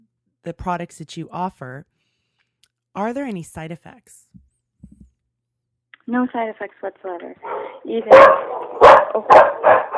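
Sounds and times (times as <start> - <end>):
speech: 0.4 - 1.9, 3.0 - 4.4, 6.1 - 8.6, 9.2 - 9.9
dog barking at an office: 7.4 - 9.9.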